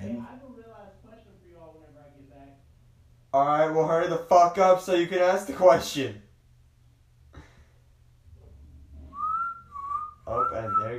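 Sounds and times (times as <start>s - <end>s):
speech: 3.3s - 6.2s
person whistling a short clear note sliding upward: 9.1s - 10.9s.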